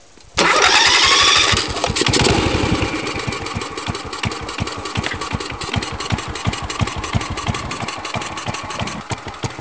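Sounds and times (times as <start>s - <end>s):
engine starting: 0.4s - 9.3s.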